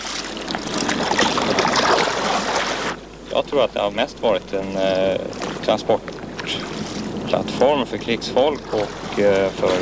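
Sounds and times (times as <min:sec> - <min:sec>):
oars rowing a light boat built for rowing and sail through water: 0:00.0 - 0:09.7
speech: 0:03.4 - 0:09.7.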